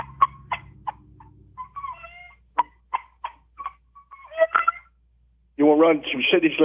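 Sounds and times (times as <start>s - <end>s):
game call short warbling squawk: 0.0s - 4.9s
game call imitating chicken clucks: 0.0s - 5.0s
speech: 5.6s - 6.6s.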